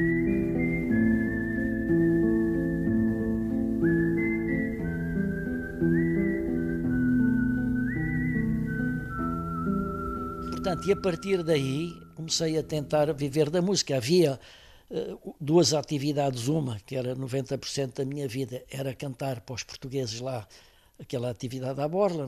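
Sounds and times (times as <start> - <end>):
whistled melody from a film soundtrack: 0.0 - 13.4
steady instrumental film score backing: 0.0 - 13.6
speech: 10.7 - 22.2.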